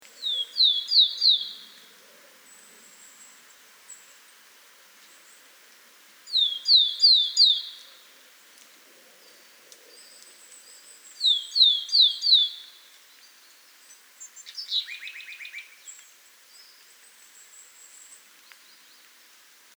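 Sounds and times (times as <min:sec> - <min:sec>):
willow tit calling in Innernzell: 0:00.0 - 0:01.9, 0:06.3 - 0:08.1, 0:09.9 - 0:19.1.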